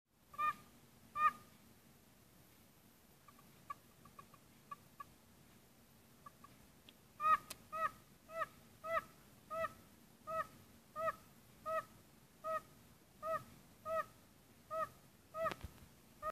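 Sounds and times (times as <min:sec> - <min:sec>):
Bombina orientalis calling: 0:00.3 - 0:01.5, 0:03.2 - 0:05.2, 0:07.2 - 0:16.2.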